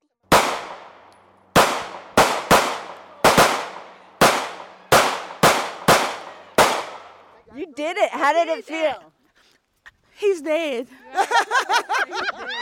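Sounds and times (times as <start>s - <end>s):
handgun gunshots fired at a silhouette target at a shooting range: 0.3s - 7.3s
speech: 7.6s - 9.2s, 10.2s - 12.5s
laughter: 10.9s - 12.5s.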